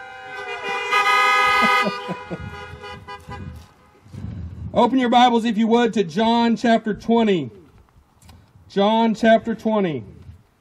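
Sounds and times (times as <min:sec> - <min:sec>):
several car horns honking: 0:00.0 - 0:04.2
laughter: 0:01.4 - 0:02.9
speech: 0:04.8 - 0:07.6, 0:08.7 - 0:10.2.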